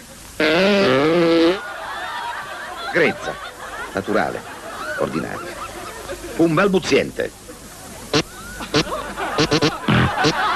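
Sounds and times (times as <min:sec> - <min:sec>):
faint noise: 0:00.0 - 0:10.5
voice imitating a coarse fart: 0:00.4 - 0:01.6, 0:08.1 - 0:10.4
laughter: 0:01.5 - 0:10.5
speech: 0:03.0 - 0:05.6, 0:06.4 - 0:07.4.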